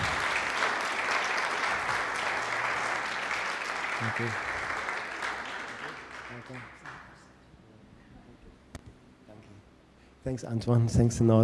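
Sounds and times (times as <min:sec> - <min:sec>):
crowd applauding: 0:00.0 - 0:07.4
speech: 0:04.0 - 0:04.5, 0:06.5 - 0:06.8, 0:10.2 - 0:11.4.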